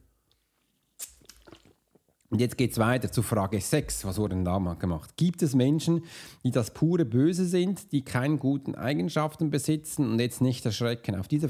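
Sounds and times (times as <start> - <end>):
person sipping water: 1.0 - 2.3
swallowing and mouth sounds: 1.0 - 2.3
speech: 2.3 - 11.4.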